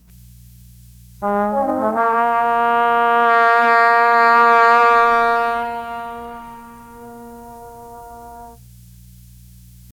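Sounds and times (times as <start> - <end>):
upright bass: 1.2 - 3.1
1950s small jazz combo playing: 1.2 - 8.6.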